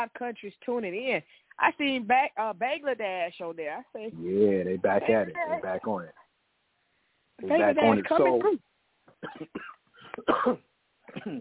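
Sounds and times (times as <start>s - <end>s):
speech: 0.0s - 6.2s, 7.4s - 11.3s
drawn-out voiced throat clearing: 9.1s - 11.3s
short sharp coughs: 9.2s - 11.3s.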